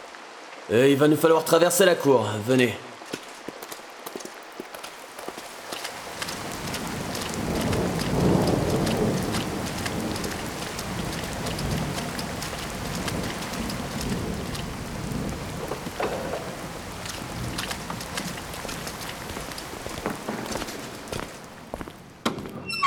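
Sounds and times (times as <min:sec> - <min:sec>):
heavy rain pouring in a thunderstorm: 0:00.0 - 0:22.2
speech: 0:00.7 - 0:02.9
deep rumble of thunder: 0:06.0 - 0:21.8.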